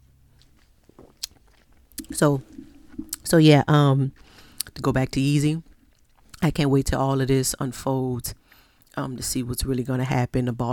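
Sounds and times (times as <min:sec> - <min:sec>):
wet mouth and lip noises from sipping a drink: 0:00.4 - 0:03.3, 0:05.6 - 0:06.5
speech: 0:02.2 - 0:02.5, 0:03.3 - 0:05.7, 0:06.4 - 0:08.4, 0:09.0 - 0:10.7.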